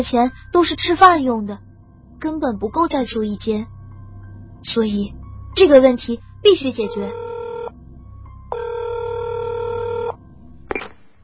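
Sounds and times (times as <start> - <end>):
speech: 0.0 - 3.7, 4.6 - 7.2
electronic telephone ring over the line: 6.9 - 7.7, 8.5 - 10.9.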